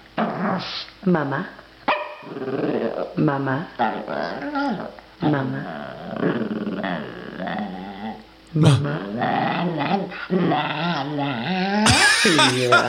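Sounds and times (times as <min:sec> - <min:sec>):
speech: 0:00.6 - 0:01.6, 0:02.2 - 0:07.8, 0:08.5 - 0:12.8
small terrier growling and snarling: 0:02.2 - 0:11.9
laughter: 0:11.8 - 0:12.8.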